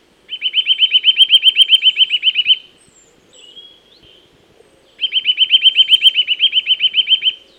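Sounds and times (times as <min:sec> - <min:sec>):
Eurasian nuthatch singing high piping whistles: 0:00.3 - 0:02.7, 0:05.0 - 0:07.5.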